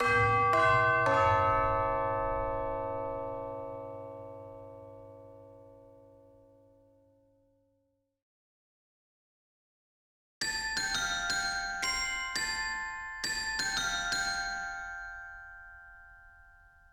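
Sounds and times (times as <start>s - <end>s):
bells: 0.0s - 5.7s, 10.4s - 16.9s.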